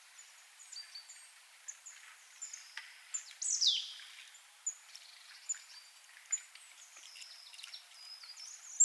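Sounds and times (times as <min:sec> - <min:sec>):
light background noise: 0:00.0 - 0:08.8
marsh tit chips: 0:06.3 - 0:08.8.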